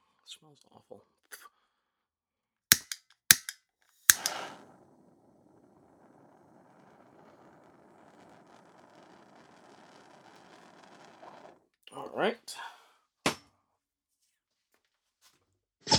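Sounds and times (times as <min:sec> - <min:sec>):
speech: 0:00.3 - 0:01.6, 0:12.2 - 0:12.6
propane torch lighter clicking to light a joint: 0:02.7 - 0:04.7
propane torch flame hissing roar: 0:04.1 - 0:11.7.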